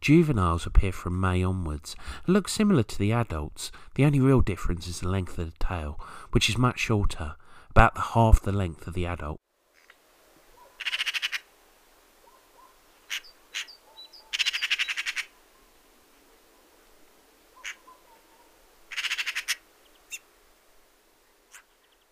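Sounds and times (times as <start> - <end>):
speech: 0.0 - 9.4
magpie harsh chattering call: 10.8 - 11.4, 13.1 - 15.3, 17.6 - 18.0, 18.9 - 20.2.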